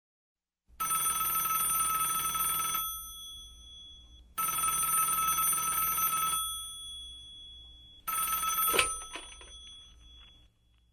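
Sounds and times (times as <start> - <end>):
telephone ringing for an incoming call: 0.8 - 10.9
click of the telephone call being answered: 8.1 - 10.5.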